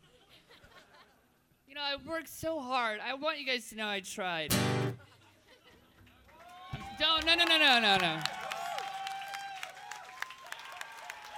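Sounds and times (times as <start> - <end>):
speech: 1.8 - 4.8, 7.0 - 8.4
audience applauding: 6.3 - 11.3.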